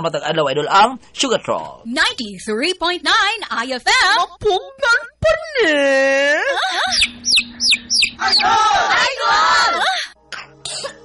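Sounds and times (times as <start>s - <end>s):
speech: 0.0s - 7.4s, 8.2s - 10.0s
child coughing: 10.0s - 11.0s.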